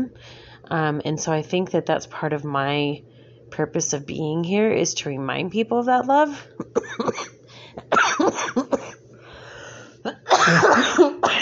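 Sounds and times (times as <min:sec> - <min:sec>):
speech: 0:00.0 - 0:08.6
person coughing in harsh bursts: 0:06.6 - 0:09.0, 0:10.1 - 0:11.3.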